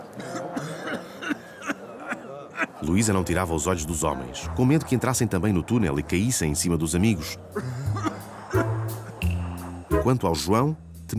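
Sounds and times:
man coughing harshly: 0.2s - 2.8s, 7.6s - 8.3s
laughter: 1.2s - 3.0s, 7.5s - 9.2s
speech: 2.8s - 7.9s, 10.1s - 11.1s.

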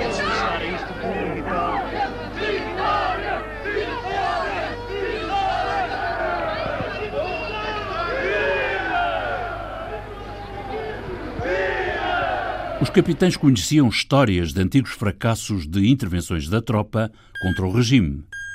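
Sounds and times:
large crowd in a street procession shouting and calling out: 0.0s - 13.3s
speech: 12.9s - 18.4s.

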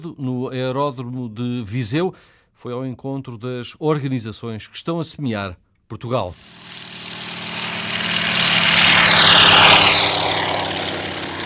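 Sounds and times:
speech: 0.0s - 7.0s
crop-dusting propeller airplane engine droning overhead while dropping seeds: 6.4s - 11.4s.

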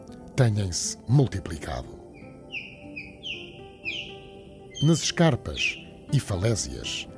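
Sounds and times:
speech: 0.4s - 2.0s, 4.8s - 7.1s
osprey calling in Portugal: 2.1s - 7.1s.

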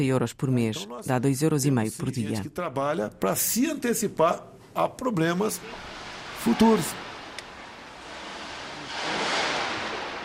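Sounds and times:
speech: 0.0s - 7.0s
wind rushing through broken windows: 5.6s - 10.2s.

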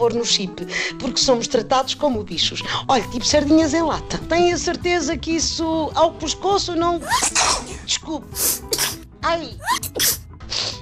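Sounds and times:
speech: 0.0s - 10.2s
woman allergic to cats sneezing: 7.0s - 7.8s, 8.4s - 9.0s, 9.6s - 10.7s
woman sniffing: 8.4s - 9.0s, 9.7s - 10.7s.

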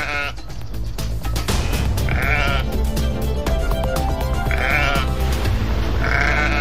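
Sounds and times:
flock of sheep bleating while grazing: 0.0s - 0.4s, 2.1s - 2.8s, 4.4s - 5.2s, 6.0s - 6.5s
steady rumbling outdoor background: 0.0s - 6.5s.

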